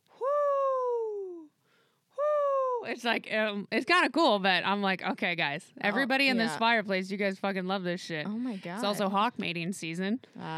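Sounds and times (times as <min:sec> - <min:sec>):
human voice imitating an owl hooting: 0:00.1 - 0:01.5
speech: 0:02.8 - 0:10.5.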